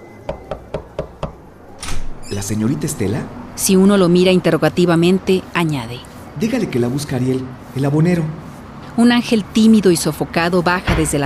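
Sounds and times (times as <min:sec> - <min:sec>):
speech: 0:00.3 - 0:00.7, 0:02.3 - 0:08.4, 0:09.0 - 0:11.2
knocking on a door: 0:00.3 - 0:01.4, 0:10.9 - 0:11.2.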